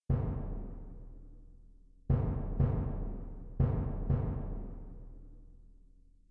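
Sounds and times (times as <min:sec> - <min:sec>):
bass drum: 0:00.0 - 0:01.3, 0:02.1 - 0:05.2.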